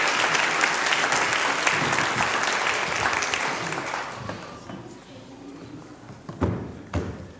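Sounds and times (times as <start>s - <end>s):
audience applause: 0.0s - 4.7s.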